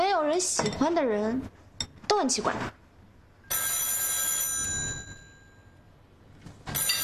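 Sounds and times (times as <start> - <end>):
speech: 0.2 - 1.6, 2.1 - 2.8
telephone ringing with bright metallic bell tone: 3.5 - 5.7, 6.7 - 7.0.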